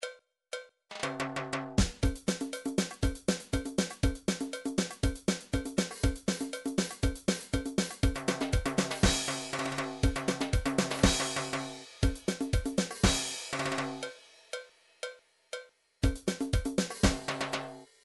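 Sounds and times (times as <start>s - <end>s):
MIDI cha cha drum pattern: 0.9s - 18.0s.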